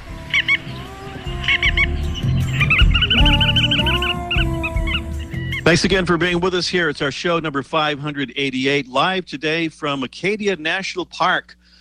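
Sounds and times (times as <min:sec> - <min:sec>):
bar-tailed godwit flock calling: 0:00.0 - 0:06.9
low steady rumble: 0:00.0 - 0:08.8
speech: 0:05.7 - 0:11.6.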